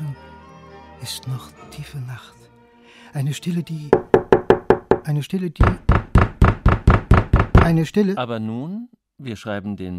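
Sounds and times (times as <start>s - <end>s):
speech: 1.0s - 4.3s, 5.0s - 5.9s, 7.7s - 9.9s
firm rapid knocking on a door: 3.9s - 7.8s.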